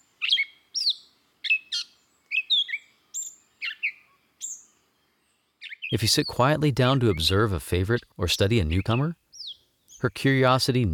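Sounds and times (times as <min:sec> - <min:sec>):
grey catbird singing: 0:00.2 - 0:04.7, 0:05.6 - 0:07.4, 0:08.6 - 0:10.2
speech: 0:05.9 - 0:09.2, 0:10.0 - 0:10.9.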